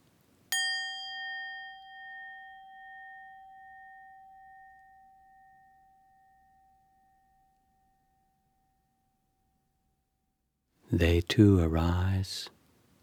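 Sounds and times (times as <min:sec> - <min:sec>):
single bell struck and ringing: 0:00.5 - 0:06.6
speech: 0:10.9 - 0:12.6.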